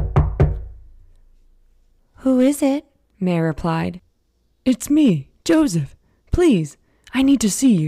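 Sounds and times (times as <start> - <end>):
loud knocking on a wooden door: 0.0 - 0.8
speech: 2.2 - 4.0, 4.6 - 7.8.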